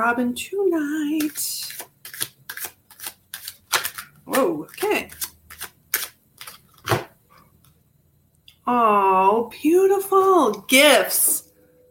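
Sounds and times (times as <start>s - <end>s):
speech: 0.0s - 1.9s, 4.3s - 5.2s, 8.7s - 11.4s
deck of dragon cards being shuffled: 1.2s - 7.1s.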